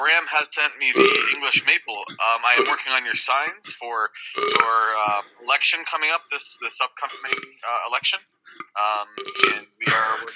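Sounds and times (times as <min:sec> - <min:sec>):
speech: 0:00.0 - 0:10.3
person burping after drinking cola: 0:00.8 - 0:05.4, 0:07.0 - 0:07.6, 0:08.5 - 0:10.3.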